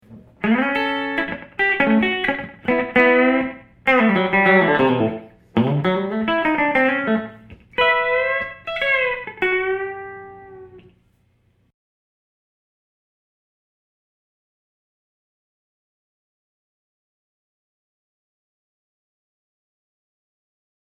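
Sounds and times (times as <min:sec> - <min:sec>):
jazz country guitar played through pickup: 0:00.0 - 0:11.0.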